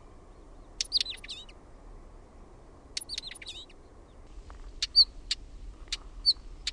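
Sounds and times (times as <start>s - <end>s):
Northern wheatear calls: 0.8s - 1.6s, 3.0s - 3.8s, 4.6s - 6.7s.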